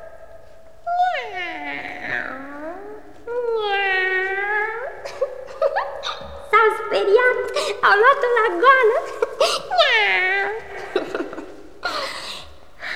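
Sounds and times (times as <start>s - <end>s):
cat meowing: 0.9s - 11.1s
laughter: 5.1s - 6.5s, 7.3s - 9.8s, 10.5s - 12.4s.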